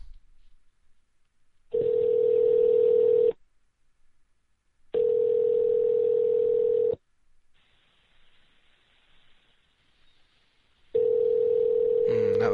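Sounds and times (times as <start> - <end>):
outgoing call's ringback tone: 1.7 - 3.4, 5.0 - 7.0, 11.0 - 12.5.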